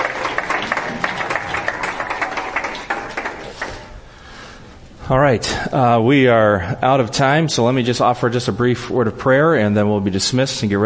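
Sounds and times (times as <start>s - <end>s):
room full of people applauding: 0.0s - 4.0s
speech: 5.1s - 10.8s.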